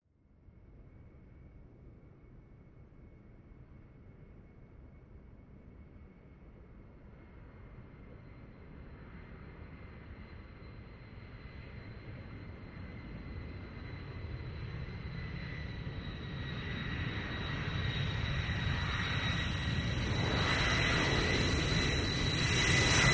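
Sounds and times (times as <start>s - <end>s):
large jet landing: 8.6s - 23.1s.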